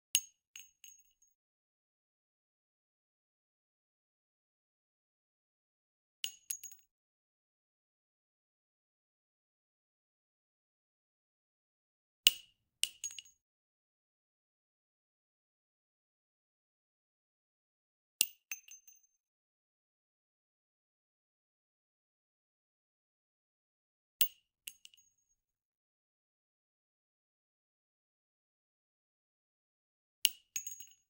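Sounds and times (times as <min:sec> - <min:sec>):
.357 Magnum shell casing dropping on concrete: 0:00.2 - 0:01.2, 0:06.2 - 0:06.8, 0:12.3 - 0:13.3, 0:18.2 - 0:19.0, 0:30.3 - 0:31.0.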